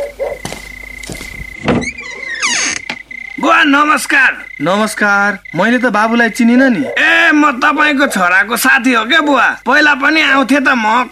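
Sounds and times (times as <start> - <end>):
door thuds and clunks: 1.1 - 3.1
speech: 3.5 - 11.1.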